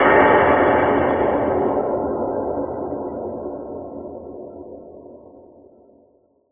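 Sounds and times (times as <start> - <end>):
sci-fi explosion: 0.0 - 2.9.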